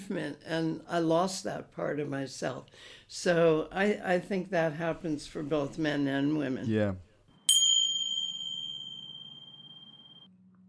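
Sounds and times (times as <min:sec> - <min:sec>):
speech: 0:00.1 - 0:07.0
bright bell chime signalling a break: 0:07.5 - 0:10.3.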